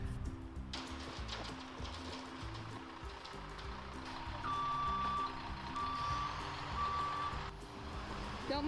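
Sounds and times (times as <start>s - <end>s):
concrete truck engine rumbling at a barn: 0.0s - 8.6s
concrete truck backup alarm beeping: 4.4s - 7.5s.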